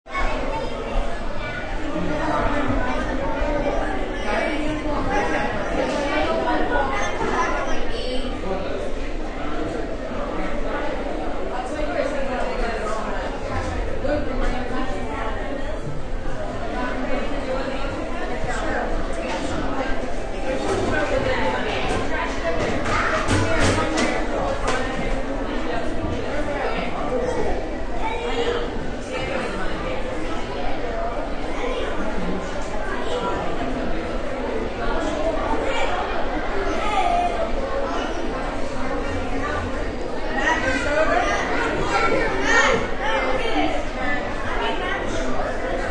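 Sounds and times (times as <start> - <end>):
background sounds inside crowded cafeteria: 0.0 - 45.8.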